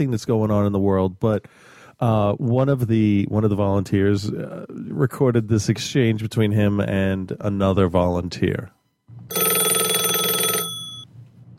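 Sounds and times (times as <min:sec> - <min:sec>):
speech: 0:00.0 - 0:09.5
telephone bell ringing: 0:09.3 - 0:11.5.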